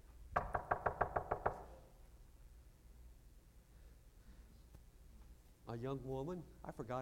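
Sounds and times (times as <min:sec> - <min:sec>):
firm knocking on a door: 0:00.3 - 0:01.8
speech: 0:05.7 - 0:07.0.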